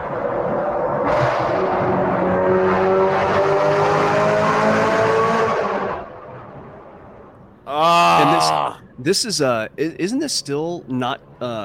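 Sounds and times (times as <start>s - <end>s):
engine of a car with a dual-clutch transmission driving hard: 0.0s - 9.0s
speech: 9.0s - 11.6s.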